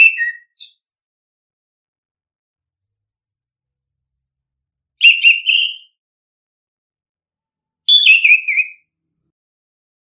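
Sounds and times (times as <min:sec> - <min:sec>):
bird whistled song: 0:00.0 - 0:01.0, 0:05.0 - 0:06.0, 0:07.9 - 0:09.0.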